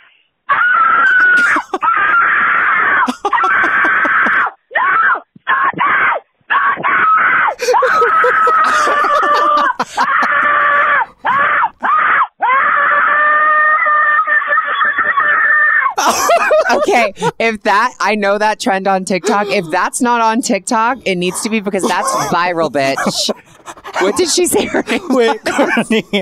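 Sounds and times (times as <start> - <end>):
person screaming desperately: 0.5 - 17.4, 21.8 - 22.3
laughter: 1.1 - 2.2, 2.8 - 4.5, 7.5 - 11.8, 16.0 - 18.0, 19.0 - 26.2
quick gasps for breath: 7.5 - 10.1, 23.0 - 25.1
speech: 17.0 - 23.4, 24.0 - 26.2.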